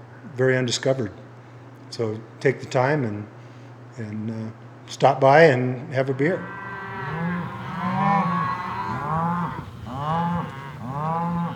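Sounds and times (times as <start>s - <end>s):
speech: 0.4s - 1.2s, 1.9s - 3.4s, 4.0s - 6.6s
herd of cattle mooing while driven down road: 6.0s - 11.5s.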